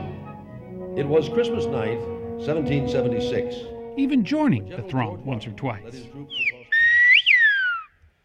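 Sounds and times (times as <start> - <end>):
speech: 0.9 - 6.6
person whistling in the Canary Islands whistled language: 6.3 - 8.0.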